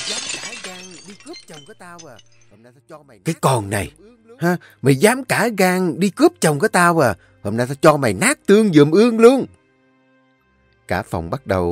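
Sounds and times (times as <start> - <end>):
something breaking and shattering: 0.0 - 2.6
speech: 1.3 - 9.6, 10.9 - 11.6.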